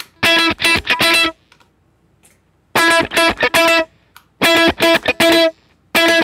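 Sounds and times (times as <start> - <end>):
electric guitar strummed through a heavy distortion effect: 0.2 - 1.5, 2.8 - 6.2.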